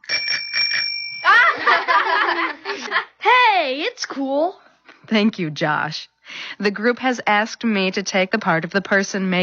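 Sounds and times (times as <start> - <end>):
small tricycle bell ringing: 0.0 - 1.9
several people laughing and chuckling: 1.3 - 3.2
speech: 2.4 - 9.4.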